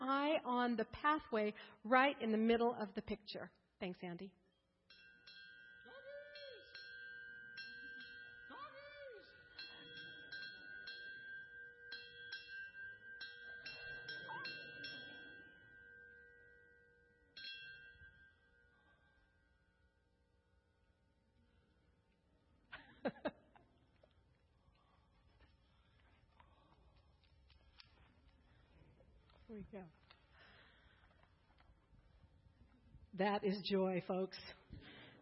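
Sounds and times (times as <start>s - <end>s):
speech: 0.1s - 4.4s, 29.6s - 30.0s, 33.2s - 35.2s
large porch bell ringing: 4.9s - 21.6s.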